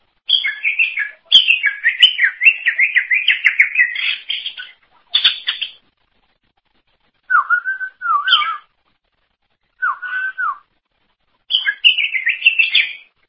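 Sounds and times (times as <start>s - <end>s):
greater green leafbird warbling song: 0.3s - 5.8s, 7.3s - 8.6s, 11.5s - 13.1s.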